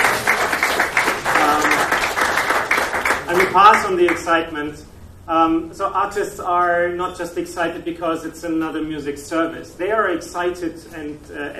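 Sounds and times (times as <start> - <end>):
audience applause: 0.0 - 4.2
speech: 3.6 - 11.5.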